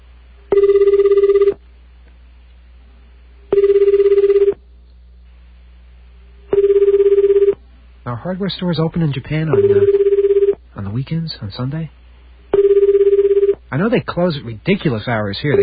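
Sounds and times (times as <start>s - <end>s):
telephone ringback tone on international call: 0.5s - 1.6s, 3.5s - 4.6s, 6.5s - 7.6s, 9.5s - 10.6s, 12.5s - 13.6s
speech: 8.1s - 10.0s, 10.8s - 12.0s, 13.7s - 15.6s.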